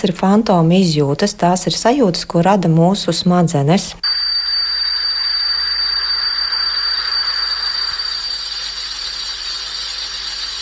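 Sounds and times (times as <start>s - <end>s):
speech: 0.0s - 4.2s
simulated tinnitus broad hissing buzz: 4.0s - 10.6s
simulated tinnitus steady high-pitched whistling tone: 4.0s - 10.6s.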